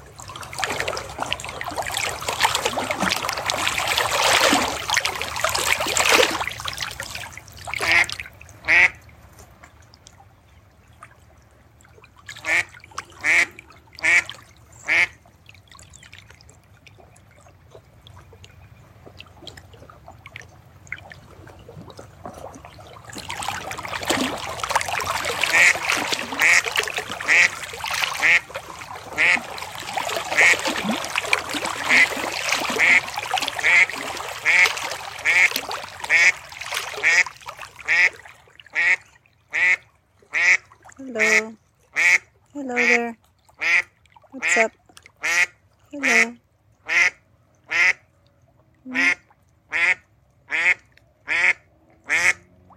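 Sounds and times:
water trickling and splashing: 0.0 - 52.7
duck quacking: 7.8 - 9.0, 12.4 - 14.3, 14.9 - 15.1, 25.4 - 25.8, 26.4 - 27.6, 28.2 - 28.4, 29.2 - 29.4, 32.7 - 35.5, 36.1 - 36.4, 38.8 - 39.8, 40.4 - 40.6, 43.6 - 44.6, 45.2 - 46.3, 46.9 - 48.0, 48.9 - 52.4.

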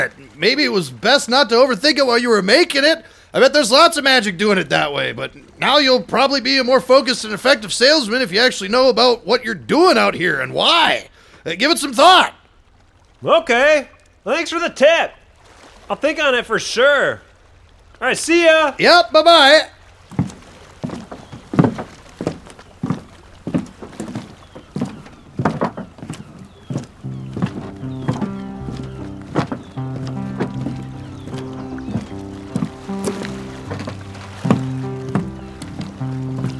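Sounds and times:
speech: 0.0 - 12.4, 13.2 - 15.2, 15.9 - 17.2, 18.0 - 20.2
footsteps walking at an even pace: 20.0 - 36.5.

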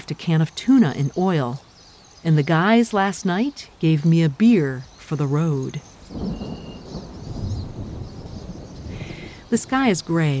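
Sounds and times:
faint hiss of rain or wind: 0.0 - 10.3
speech: 0.1 - 6.4, 9.5 - 10.3
distant thunder rumbling: 6.1 - 10.3.

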